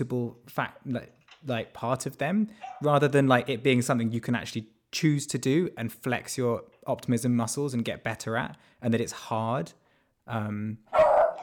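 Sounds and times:
speech: 0.0s - 11.4s
dog barking: 2.6s - 2.9s, 10.9s - 11.4s.

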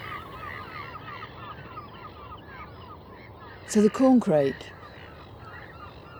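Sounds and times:
large flock of black-headed gulls calling: 0.0s - 1.7s, 3.5s - 6.1s
speech: 3.7s - 4.8s.

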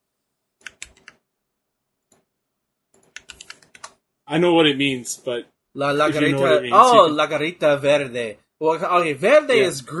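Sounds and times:
typing on a computer keyboard: 0.6s - 1.2s, 2.9s - 4.0s
speech: 4.3s - 9.9s.

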